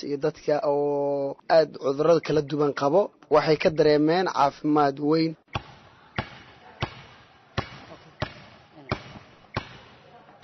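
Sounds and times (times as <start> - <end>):
speech: 0.0 - 5.7
basketball bouncing on the floor of an indoor basketball hall at a sports centre: 5.6 - 10.4
faint voices: 5.7 - 10.4.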